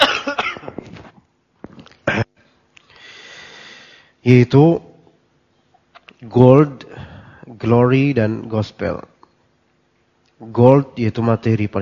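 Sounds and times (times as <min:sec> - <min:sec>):
person coughing during a religious lecture: 0:00.0 - 0:00.9, 0:02.0 - 0:02.4
low hiss: 0:00.0 - 0:11.7
speech: 0:04.2 - 0:04.9, 0:06.2 - 0:07.0, 0:07.6 - 0:09.1, 0:10.4 - 0:11.7.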